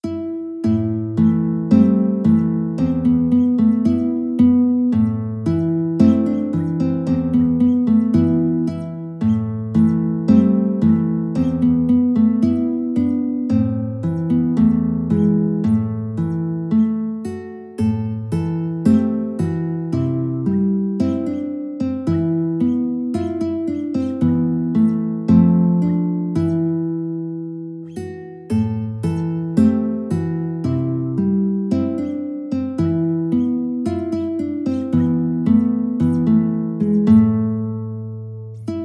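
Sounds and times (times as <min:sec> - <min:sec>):
two guitars playing a duet: 0:00.0 - 0:38.8.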